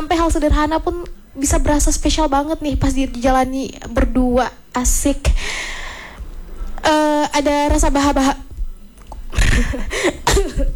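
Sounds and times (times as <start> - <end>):
speech: 0.2 - 5.8, 6.8 - 8.4, 9.3 - 10.7
harsh coughs from a person: 9.3 - 10.7.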